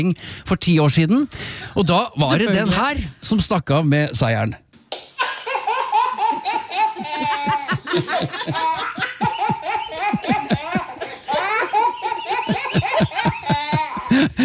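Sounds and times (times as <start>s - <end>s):
speech: 0.0s - 4.6s, 8.0s - 8.8s
baby laughing in squealing giggles and belly laughs: 5.2s - 14.4s.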